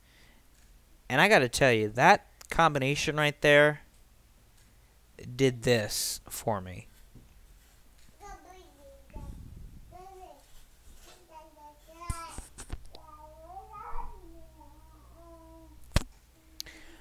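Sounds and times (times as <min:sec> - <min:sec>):
speech: 0:01.1 - 0:03.8, 0:05.2 - 0:06.9
baby babbling and cooing: 0:08.2 - 0:16.6.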